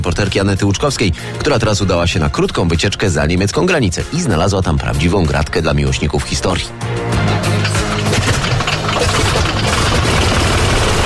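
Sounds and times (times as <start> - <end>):
speech: 0.0 - 7.1
vintage airplane engine running: 7.0 - 11.0.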